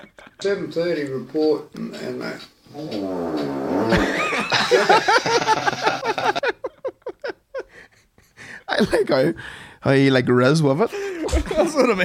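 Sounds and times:
speech: 0:00.0 - 0:04.2, 0:08.8 - 0:12.0
fart sound imitated by a voice: 0:02.7 - 0:04.4
loud laughter: 0:03.8 - 0:07.7.

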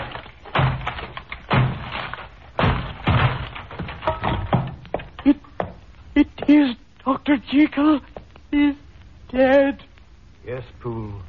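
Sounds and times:
door being battered down: 0:00.0 - 0:05.8
speech: 0:07.5 - 0:11.2.

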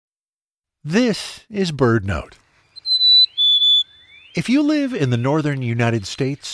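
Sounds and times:
speech: 0:00.8 - 0:02.4, 0:04.4 - 0:06.5
Black-capped Chickadee song: 0:02.8 - 0:04.4.

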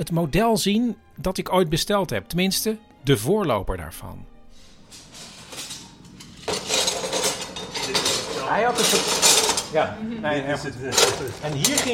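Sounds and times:
speech: 0:00.0 - 0:04.3, 0:08.5 - 0:11.9
metal scissor dies clinking and rattling while handled: 0:05.0 - 0:09.8, 0:10.9 - 0:11.9.

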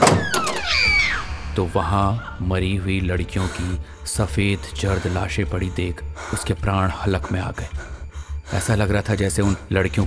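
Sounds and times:
faint click of the door latch: 0:00.0 - 0:00.9
door of a warden's room in a girls' hostel creaking open: 0:00.0 - 0:01.8
speech: 0:01.6 - 0:07.9, 0:08.5 - 0:10.0.

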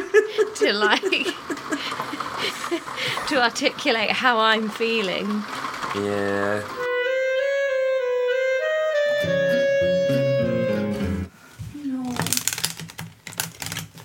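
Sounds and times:
laughter: 0:00.0 - 0:03.4
speech: 0:00.6 - 0:06.8
steady musical tone: 0:06.7 - 0:11.3
deck of playing cards being shuffled: 0:11.6 - 0:14.0.

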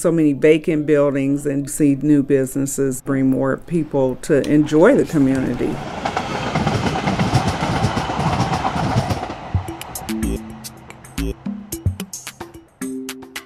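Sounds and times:
speech: 0:00.0 - 0:06.1
light rail train rumbling along the tracks: 0:04.8 - 0:12.8
rhythmic clunks of light rail train: 0:06.1 - 0:13.4.

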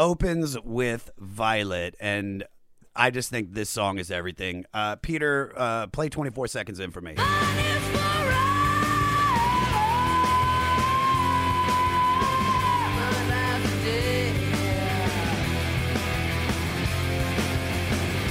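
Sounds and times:
speech: 0:00.0 - 0:08.4
loud distorted rock guitars: 0:07.2 - 0:18.2
rock drums: 0:07.2 - 0:18.2
raw sustained screamed vocal in a rock song: 0:08.1 - 0:13.6.

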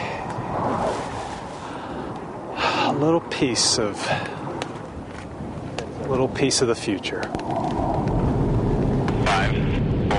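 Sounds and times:
F-18 fighter jets roaring past: 0:00.0 - 0:05.0, 0:07.0 - 0:10.1
speech: 0:03.0 - 0:04.4, 0:06.1 - 0:08.0.

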